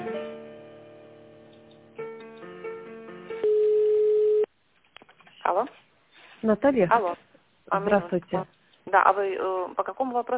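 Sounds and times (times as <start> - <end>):
telephone busy signal: 3.4 - 4.5
speech: 5.5 - 5.8, 6.4 - 10.3.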